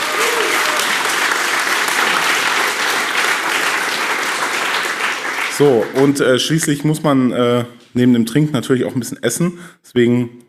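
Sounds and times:
audience applause: 0.0s - 6.4s
speech: 5.6s - 10.4s.

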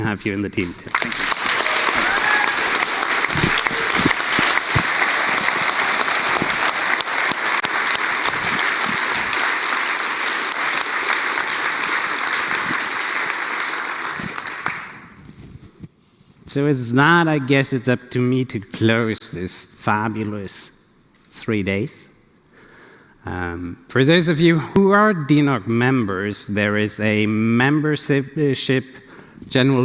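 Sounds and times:
speech: 0.0s - 1.4s, 16.5s - 20.8s, 21.5s - 22.1s, 23.2s - 29.8s
large conference audience applause welcoming a team member: 0.8s - 15.2s.

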